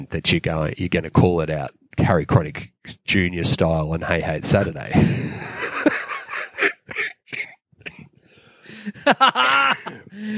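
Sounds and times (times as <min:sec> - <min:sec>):
speech: 0:00.0 - 0:05.6, 0:09.0 - 0:10.3
laughter: 0:04.3 - 0:07.0, 0:08.7 - 0:10.3
person coughing: 0:06.5 - 0:08.1.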